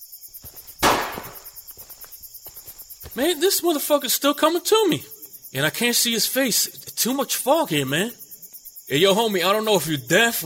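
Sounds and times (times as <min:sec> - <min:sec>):
insects chirping: 0:00.0 - 0:10.4
warning gunshot fired into the air on foggy private property: 0:00.8 - 0:01.5
speech: 0:03.2 - 0:08.2, 0:08.9 - 0:10.4.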